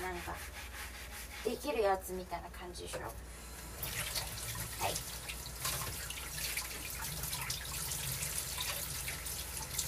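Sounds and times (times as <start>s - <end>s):
cutting board scrubbed with detergent: 0.0s - 2.0s
speech: 0.2s - 0.7s, 1.4s - 4.0s
water running at a kitchen sink: 3.8s - 9.8s.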